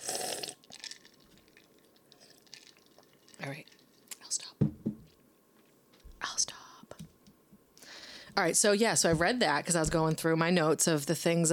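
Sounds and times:
person slurping a drink: 0:00.0 - 0:01.0
speech: 0:03.4 - 0:03.7, 0:08.4 - 0:11.5.

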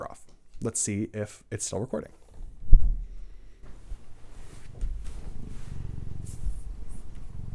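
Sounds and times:
speech: 0:00.6 - 0:02.2
soft rustling: 0:02.1 - 0:07.5
thump: 0:02.7 - 0:03.8
cat purring: 0:05.0 - 0:07.5.

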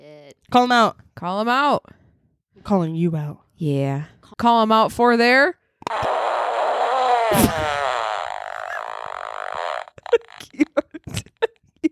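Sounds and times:
speech: 0:00.5 - 0:02.0, 0:02.6 - 0:05.6, 0:07.3 - 0:07.7
novelty fart sound button: 0:05.8 - 0:10.6.

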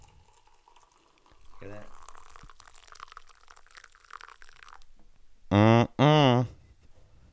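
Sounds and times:
hot water poured over tea bag in cup: 0:00.0 - 0:05.0
speech: 0:01.6 - 0:02.0.

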